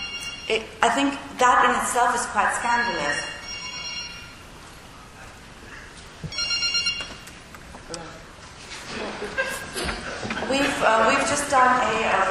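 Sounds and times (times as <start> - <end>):
mobile phone ringing with a bright electronic ringtone: 0.0 - 0.6, 2.8 - 4.5, 6.3 - 7.2
speech: 0.5 - 3.4, 10.5 - 12.2
people murmuring and chuckling: 7.8 - 11.5.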